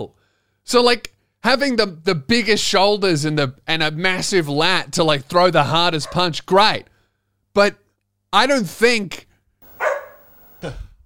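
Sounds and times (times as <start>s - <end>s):
speech: 0.0s - 6.9s, 7.6s - 9.3s, 10.6s - 10.8s
dog barking: 6.0s - 6.3s, 9.7s - 10.3s.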